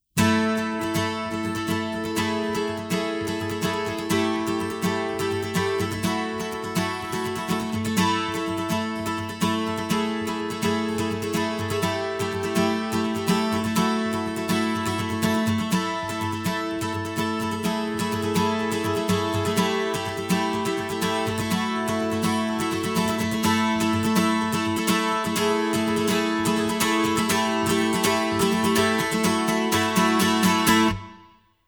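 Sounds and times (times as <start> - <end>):
acoustic Nashville music: 0.2 - 31.4.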